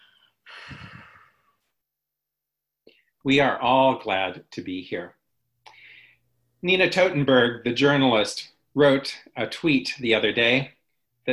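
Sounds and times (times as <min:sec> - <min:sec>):
deep breath: 0:00.0 - 0:01.7, 0:05.7 - 0:06.4
speech: 0:03.2 - 0:05.2, 0:06.6 - 0:11.3.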